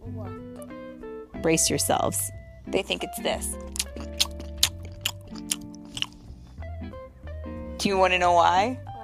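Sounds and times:
speech: 0:01.4 - 0:03.8, 0:07.8 - 0:08.9
loud open-mouthed chewing and crunching food: 0:03.6 - 0:06.6.

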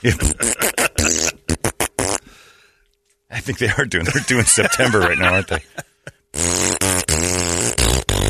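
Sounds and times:
speech: 0:00.0 - 0:00.5, 0:03.4 - 0:05.9
laughter: 0:00.0 - 0:01.4, 0:04.0 - 0:06.1
loud buzzy brassy fart noises: 0:00.1 - 0:02.3, 0:06.3 - 0:08.2.

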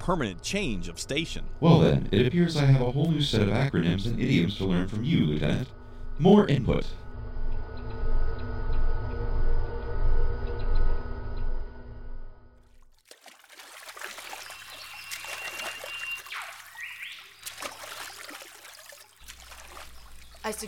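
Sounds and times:
speech: 0:00.0 - 0:07.0
steady droning hum: 0:00.0 - 0:12.6
river water trickling and lapping: 0:12.6 - 0:20.6.

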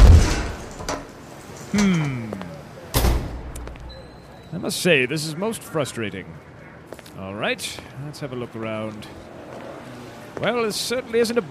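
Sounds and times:
door thudding to a stop: 0:00.0 - 0:01.1, 0:03.0 - 0:03.6
door swinging open with a creaking groan: 0:00.0 - 0:04.3
speech: 0:01.7 - 0:02.4, 0:04.6 - 0:06.5, 0:07.2 - 0:09.3, 0:10.4 - 0:11.4.

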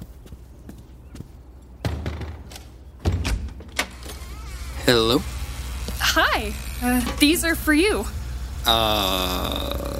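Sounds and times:
front door knocks and thuds as it swings open: 0:01.8 - 0:03.8
speech: 0:04.9 - 0:05.3, 0:06.2 - 0:09.8.

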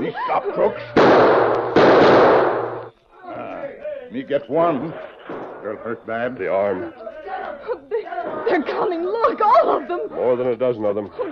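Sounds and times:
laughter: 0:00.0 - 0:01.0, 0:06.8 - 0:10.3, 0:11.0 - 0:11.3
speech: 0:00.0 - 0:01.6, 0:04.1 - 0:07.1, 0:08.2 - 0:11.3
gunshot in a radio drama: 0:01.0 - 0:02.9.

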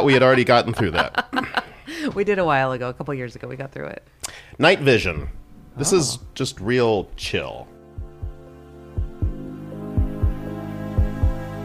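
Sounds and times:
laughter: 0:00.0 - 0:01.9
speech: 0:00.0 - 0:07.8
heartbeat thumping in low double pulses: 0:05.1 - 0:11.5.

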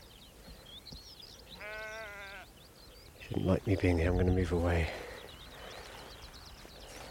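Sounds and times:
faint bird chirps: 0:00.0 - 0:07.0
steady outdoor hush: 0:00.0 - 0:07.0
sheep bleating on open hillside: 0:01.6 - 0:02.5
speech: 0:03.3 - 0:05.0.

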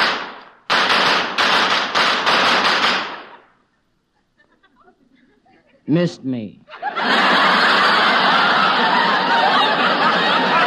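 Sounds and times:
gunshots fired at point-blank range: 0:00.0 - 0:03.4
laughter: 0:03.3 - 0:06.0, 0:06.6 - 0:10.6
speech: 0:05.9 - 0:07.2.

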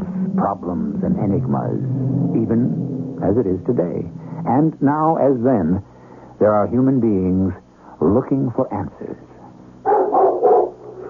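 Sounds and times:
faint hum: 0:00.0 - 0:11.0
speech: 0:00.4 - 0:09.3
large dog barking deeply: 0:09.8 - 0:11.0.

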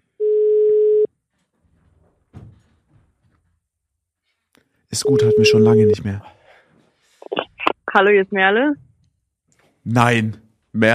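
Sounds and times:
telephone dial tone beep: 0:00.2 - 0:01.1, 0:05.0 - 0:06.0
soft thump: 0:02.3 - 0:03.3
speech: 0:04.9 - 0:06.4, 0:07.9 - 0:08.8, 0:09.8 - 0:10.9.

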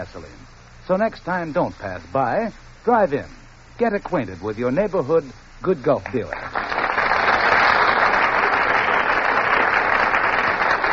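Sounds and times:
speech: 0:00.0 - 0:06.7
studio audience applauding in a theater: 0:06.1 - 0:10.9.

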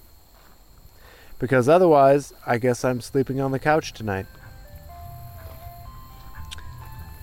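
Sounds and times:
speech: 0:01.4 - 0:04.4
steady low rumble of street traffic: 0:02.3 - 0:07.2
tinny ice cream truck jingle: 0:03.3 - 0:07.2.

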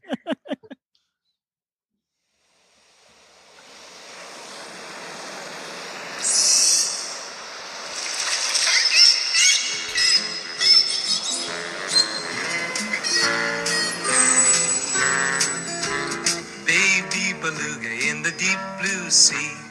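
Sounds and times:
laughter: 0:00.0 - 0:00.8
rushing wave-like wash of noise: 0:02.5 - 0:15.6
high whistling squeaky whale-like calls: 0:06.1 - 0:07.3, 0:08.4 - 0:16.4
steady musical accompaniment of a song: 0:10.2 - 0:19.6.

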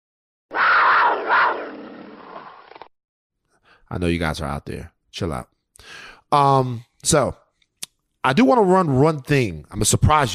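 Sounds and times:
loud raspy mountain lion roar: 0:00.5 - 0:02.5
speech: 0:03.9 - 0:07.4, 0:08.2 - 0:10.3.

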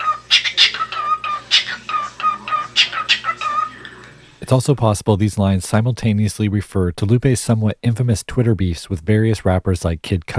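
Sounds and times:
parrot beatboxing with clicky pops and raspy bursts: 0:00.0 - 0:04.1
speech: 0:04.5 - 0:10.3.

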